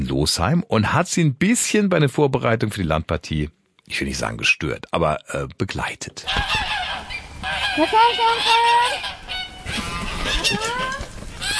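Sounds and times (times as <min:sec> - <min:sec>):
speech: 0:00.1 - 0:06.7, 0:07.8 - 0:09.1, 0:09.7 - 0:11.0
flock of geese honking on a farm: 0:06.3 - 0:11.5.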